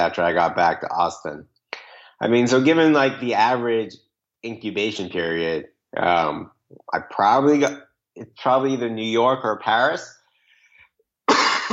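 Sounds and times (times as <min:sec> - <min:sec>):
speech: 0:00.0 - 0:01.6, 0:02.2 - 0:10.2
cough: 0:11.3 - 0:11.7.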